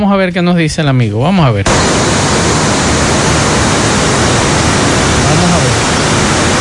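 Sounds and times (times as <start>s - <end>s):
speech: 0.0s - 3.2s
torrential rain pouring down hard: 1.7s - 6.5s.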